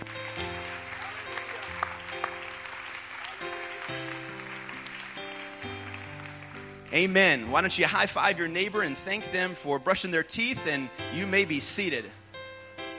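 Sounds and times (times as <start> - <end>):
crowd clapping: 0.0 - 8.0
sustained organ-like chords: 0.0 - 12.9
speech: 6.9 - 12.2.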